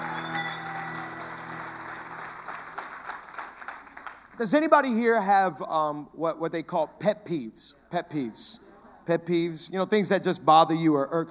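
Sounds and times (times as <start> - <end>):
audience applause and cheering at a worship gathering: 0.0 - 4.4
speech: 4.4 - 11.2.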